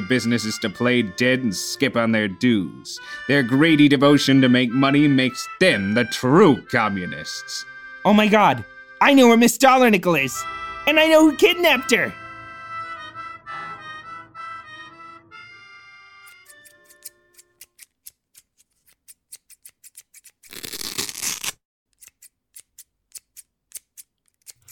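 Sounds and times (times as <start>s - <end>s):
speech: 0.1s - 12.2s
scissors cutting fabric into strips: 16.2s - 24.7s.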